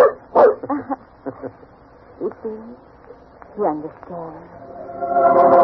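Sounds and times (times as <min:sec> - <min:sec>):
dog barking in short sharp yaps: 0:00.0 - 0:00.6
laughter: 0:00.6 - 0:01.7
speech: 0:03.6 - 0:05.5.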